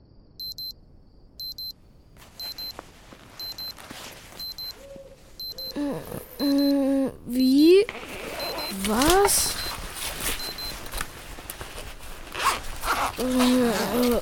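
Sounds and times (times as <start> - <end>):
alarm clock beeping in double pulses inside a tent at a camp: 0.4 - 0.7, 1.4 - 1.8, 2.4 - 2.7, 3.4 - 3.8, 4.4 - 4.8, 5.4 - 5.8, 6.4 - 6.8, 8.4 - 9.8, 10.4 - 10.7
rustling and shuffling: 1.8 - 5.8, 7.6 - 14.1
person groaning: 5.7 - 7.3
speech: 5.9 - 6.7.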